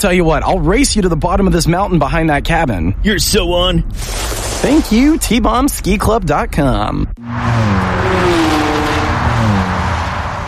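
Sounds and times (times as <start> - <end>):
speech: 0.0 - 7.8
car engine driving and revving on a road: 7.2 - 10.4.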